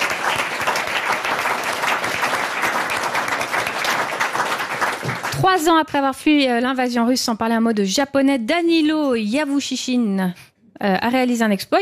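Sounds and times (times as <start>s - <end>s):
studio audience clapping: 0.0s - 5.8s
speech: 5.4s - 11.7s.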